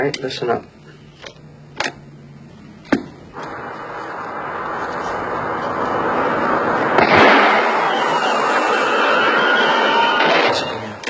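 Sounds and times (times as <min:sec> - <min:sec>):
steady broadband rush of hissing noise: 0:03.3 - 0:11.0
tire blowout: 0:03.4 - 0:11.0
gunshot: 0:05.4 - 0:10.7.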